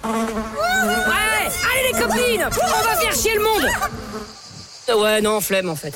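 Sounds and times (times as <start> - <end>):
fly buzzing: 0.0 - 4.9
speech: 2.1 - 5.9.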